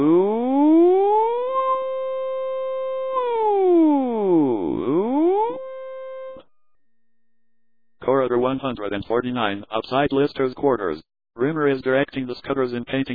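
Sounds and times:
loud blaring electronic alarm of swooping siren-like tones: 0.0s - 7.0s
speech: 8.5s - 13.1s.

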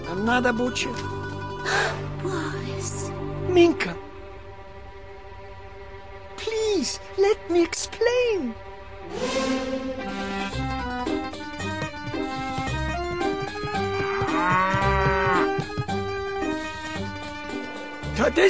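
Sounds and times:
speech: 0.1s - 4.1s, 6.8s - 10.2s, 18.3s - 18.4s
busy rhythmic musical backing: 9.1s - 18.3s
cow mooing: 13.8s - 15.7s.

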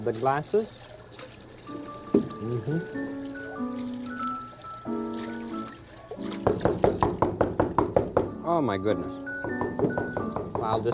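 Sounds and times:
speech: 0.0s - 0.9s, 1.7s - 3.3s, 8.5s - 9.3s, 10.6s - 10.9s
soft tonal music: 0.1s - 10.9s
loud knocks on a door: 6.4s - 8.4s, 9.4s - 10.9s.

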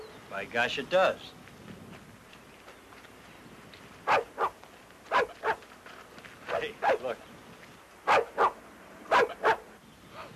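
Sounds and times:
speech: 0.3s - 1.4s
dog barking: 4.1s - 5.6s, 6.5s - 7.1s, 8.1s - 10.3s.

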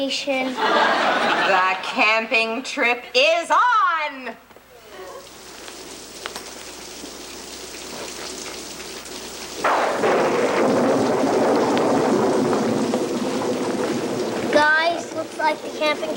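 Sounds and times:
speech: 0.0s - 4.4s, 15.4s - 16.1s
laughter: 0.4s - 2.1s
steady heavy rain: 4.8s - 16.1s
loud thunderclap rolling into a sustained rumble: 9.5s - 16.1s.

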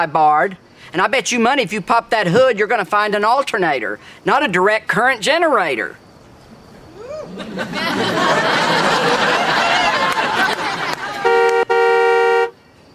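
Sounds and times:
speech: 0.0s - 6.0s, 7.4s - 9.5s
laughter: 7.1s - 11.3s
overlapping voices: 7.2s - 11.7s
1966 car with 289 engine horn honking: 11.2s - 12.6s.

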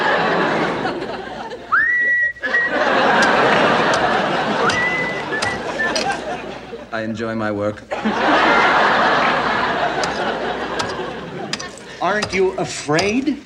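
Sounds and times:
laughter: 0.0s - 13.4s
person whistling a tune: 1.7s - 2.9s, 4.6s - 6.2s
speech: 7.0s - 8.6s, 12.0s - 13.4s.

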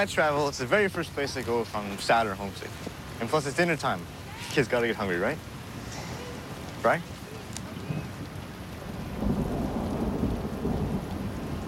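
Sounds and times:
speech: 0.0s - 5.5s, 6.8s - 7.1s
steady rain pouring: 0.0s - 11.6s
low rumble of thunder: 7.7s - 11.6s.

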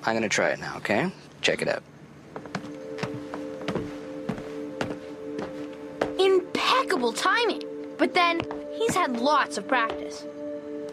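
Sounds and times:
speech: 0.0s - 2.5s, 7.0s - 10.4s
constant low electrical hum: 0.0s - 10.9s
foley footsteps performed in sync with film: 2.3s - 6.2s, 8.4s - 9.2s.

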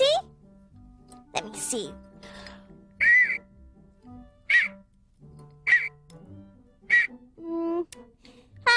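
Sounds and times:
speech: 1.4s - 2.1s
small whistle shrill toots: 3.0s - 3.5s, 4.4s - 4.8s, 5.6s - 6.0s, 6.9s - 7.2s.

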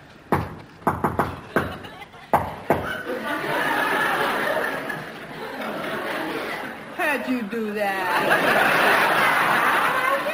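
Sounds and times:
sharp knocks on a door: 0.3s - 1.8s
audience laughter and murmuring: 1.4s - 7.0s, 8.0s - 10.3s
speech: 7.2s - 9.1s.

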